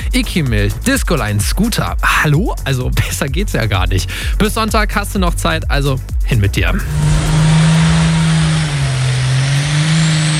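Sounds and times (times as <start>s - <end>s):
speech: 0.1s - 7.3s
heavy tractor engine revving under load: 6.8s - 10.3s.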